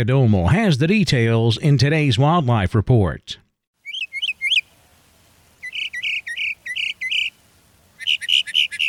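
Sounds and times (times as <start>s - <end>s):
speech: 0.0s - 3.4s
mockingbird singing bright chirping notes: 3.8s - 4.7s, 5.6s - 8.8s.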